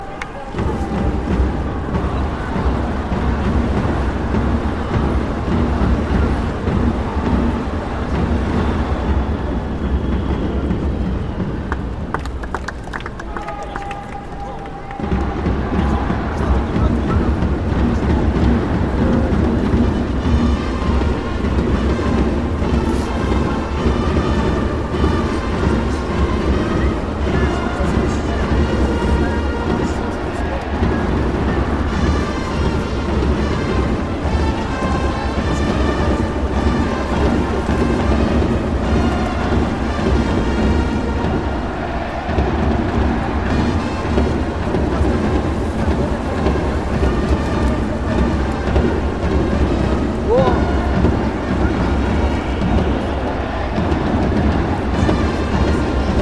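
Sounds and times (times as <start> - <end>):
Japanese baseball game: 0.0 - 56.2.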